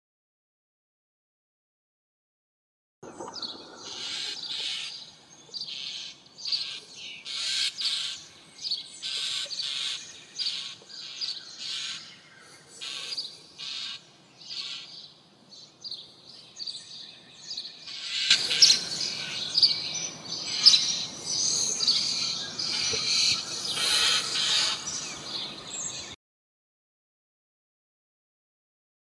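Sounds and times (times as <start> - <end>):
European Starling Sturnus vulgaris calling: 3.1 - 15.1, 16.8 - 26.2.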